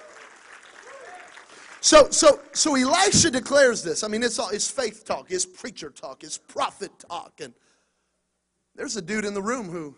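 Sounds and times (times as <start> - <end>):
audience clapping at a preacher's urging: 0.0 - 3.0
speech: 1.8 - 7.7, 8.8 - 9.9.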